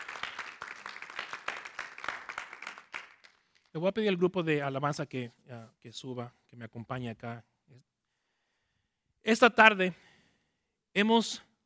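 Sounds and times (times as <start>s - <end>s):
audience applauding: 0.0s - 3.7s
speech: 3.8s - 7.9s, 9.2s - 10.1s, 11.0s - 11.5s.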